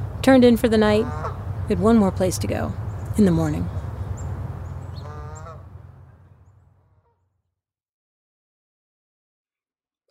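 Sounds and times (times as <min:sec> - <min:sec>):
low steady outdoor rumble: 0:00.0 - 0:07.2
speech: 0:00.2 - 0:03.8
goose-like honking calls at a woodland marsh: 0:00.8 - 0:01.4, 0:05.0 - 0:05.8.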